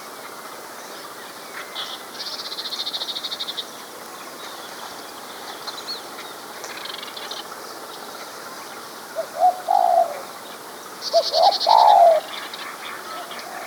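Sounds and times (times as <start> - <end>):
quiet background chirping: 0.8 - 13.6
spotted dove cooing: 9.2 - 10.3, 11.1 - 12.3.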